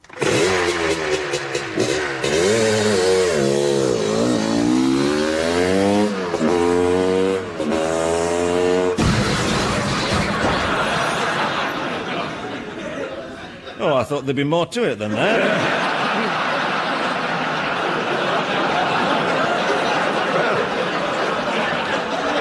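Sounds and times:
motorcycle engine revving during a Wall of Death stunt act: 0.0s - 10.5s
laughter: 9.3s - 14.2s, 14.9s - 22.4s
speech: 14.1s - 15.9s.

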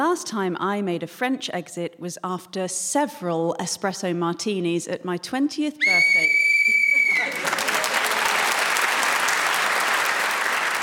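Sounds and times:
speech: 0.0s - 6.4s
short shrill whistle blast to end round: 5.8s - 7.4s
loud sustained applause from an audience: 6.8s - 10.8s.

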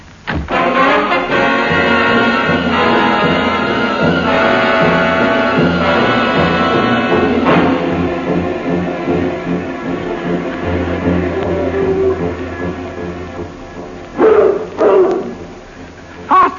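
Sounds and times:
steady low rumble: 0.0s - 16.5s
dogs barking: 14.1s - 15.6s.

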